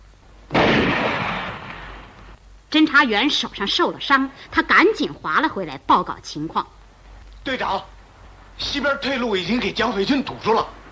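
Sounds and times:
gunshot fired toward a small boat on a lake: 0:00.5 - 0:02.2
speech: 0:02.7 - 0:06.8, 0:07.4 - 0:07.9, 0:08.6 - 0:10.8.

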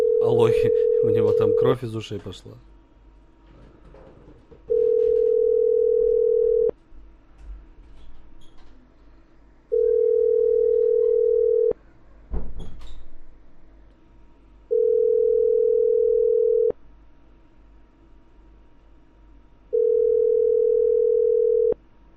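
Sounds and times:
telephone ringback tone of an unanswered call: 0:00.0 - 0:01.8, 0:04.7 - 0:06.7, 0:09.7 - 0:11.8, 0:14.7 - 0:16.7, 0:19.7 - 0:21.8
speech: 0:00.2 - 0:02.7.

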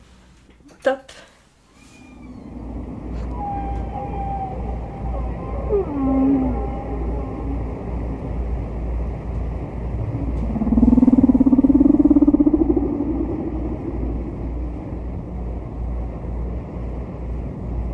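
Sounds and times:
speech: 0:00.8 - 0:01.3
distant humpback whale song from an old vinyl record: 0:01.7 - 0:17.9
constant low hum: 0:01.9 - 0:17.9.

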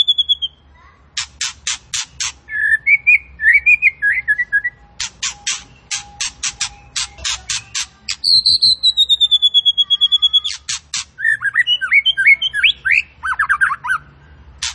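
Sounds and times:
Tembakan bird singing buzzy bursts and warbled phrases: 0:00.0 - 0:00.6, 0:01.2 - 0:14.0.

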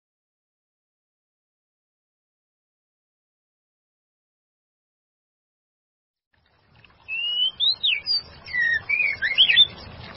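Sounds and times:
white-rumped shama singing clear whistles: 0:07.1 - 0:09.8.

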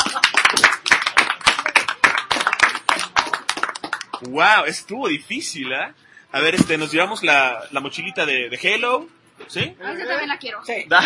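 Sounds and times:
small crowd audience clapping at a comic convention giveaway: 0:00.0 - 0:04.4
speech: 0:04.2 - 0:11.0.

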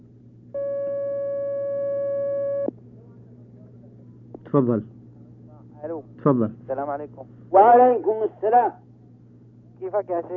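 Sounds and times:
telephone line tone as a phone call is taken: 0:00.6 - 0:02.7
speech: 0:04.5 - 0:05.0, 0:06.2 - 0:08.8, 0:09.8 - 0:10.3.

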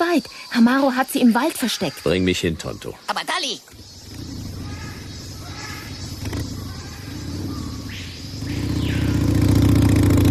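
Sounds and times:
speech: 0:00.2 - 0:03.9
Harley motorcycle engine rumbling while riding through jungle: 0:03.7 - 0:10.2
whirring sweep: 0:03.7 - 0:10.2.

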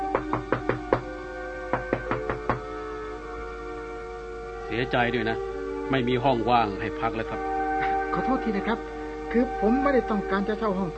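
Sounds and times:
faint steady hum: 0:00.0 - 0:10.9
loud knocking on an inn door: 0:00.1 - 0:01.1, 0:01.7 - 0:02.6
speech: 0:04.7 - 0:07.5, 0:08.2 - 0:10.9.

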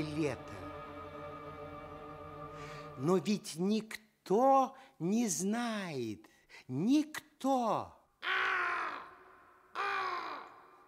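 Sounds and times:
speech: 0:00.0 - 0:00.6, 0:03.0 - 0:08.0
black raven perched on a branch cawing: 0:08.2 - 0:10.8.

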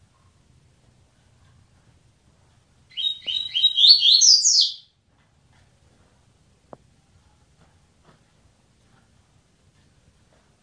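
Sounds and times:
Double-collared seedeater singing slurred whistles: 0:02.9 - 0:04.9.

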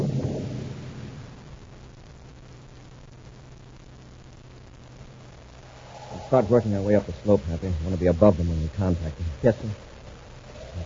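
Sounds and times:
low distant thunder rumbling: 0:00.0 - 0:01.5, 0:05.6 - 0:10.8
speech: 0:06.3 - 0:09.9.

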